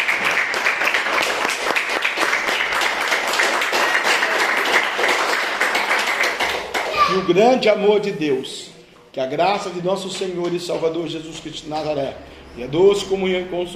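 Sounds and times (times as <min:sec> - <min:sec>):
church congregation applauding: 0:00.0 - 0:07.1
speech: 0:07.2 - 0:13.7.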